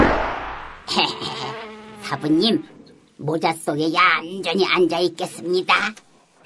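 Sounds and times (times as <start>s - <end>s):
bright swishing burst: 0.0s - 0.9s
fly buzzing in a steady droning hum: 0.8s - 2.8s
speech: 1.0s - 6.1s.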